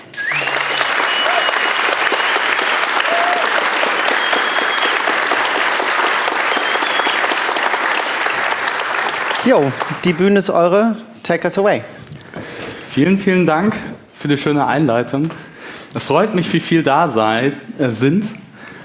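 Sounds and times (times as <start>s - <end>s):
whistles and cheers: 0.0s - 7.6s
sizeable audience applauding: 0.0s - 10.4s
speech: 9.5s - 12.1s, 13.0s - 18.4s.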